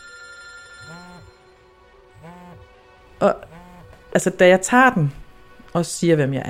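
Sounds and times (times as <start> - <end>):
telephone ringing with bright warbling tone: 0.0 - 2.7
speech: 0.9 - 1.4, 2.2 - 6.4.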